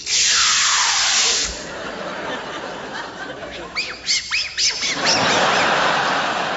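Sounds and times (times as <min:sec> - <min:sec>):
spray bottle hiss: 0:00.0 - 0:01.6
laughter: 0:01.5 - 0:06.5.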